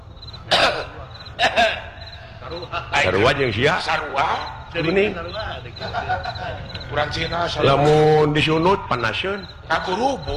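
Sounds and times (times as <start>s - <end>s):
person coughing imitating how a German coughs: 0.5s - 1.9s
laughter: 0.7s - 8.9s
speech: 2.5s - 10.3s.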